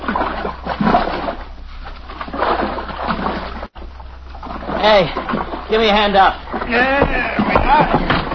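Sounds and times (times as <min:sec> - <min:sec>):
people swimming and splashing in water: 0:00.0 - 0:08.3
speech: 0:04.8 - 0:08.2.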